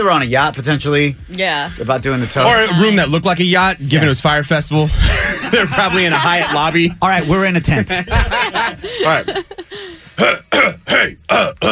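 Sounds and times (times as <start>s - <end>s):
speech: 0.0s - 9.6s, 10.2s - 11.7s
laughter: 4.9s - 9.9s
man clearing his throat: 10.2s - 11.7s.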